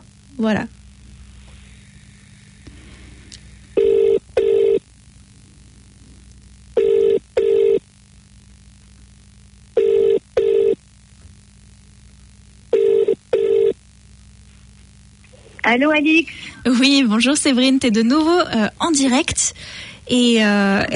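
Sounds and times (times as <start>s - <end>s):
speech: 0.4s - 0.8s, 15.7s - 20.9s
telephone ringing for an incoming call with double rings: 3.8s - 4.8s, 6.8s - 7.8s, 9.8s - 10.8s, 12.7s - 13.8s.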